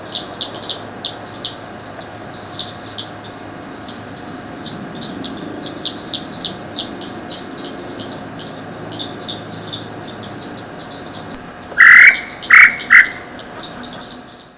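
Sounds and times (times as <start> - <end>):
insects chirping and buzzing: 0.0 - 14.5
tataupa tinamou call at Picinguaba, Ubatuba, São Paulo state, Brazil: 11.8 - 13.3.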